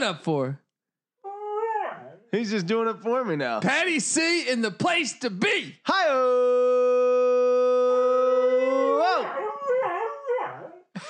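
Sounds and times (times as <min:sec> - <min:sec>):
speech: 0:00.0 - 0:00.6, 0:02.3 - 0:06.9
happy dog howling: 0:01.2 - 0:02.3, 0:07.9 - 0:10.9.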